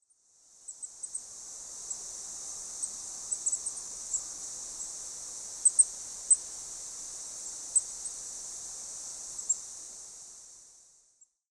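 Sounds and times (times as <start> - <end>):
goldcrest calling in Maruyama: 0.7 - 9.8.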